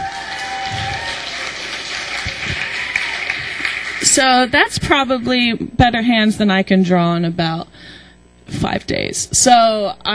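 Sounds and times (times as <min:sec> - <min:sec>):
small group clapping: 0:00.0 - 0:04.5
speech: 0:04.1 - 0:10.1.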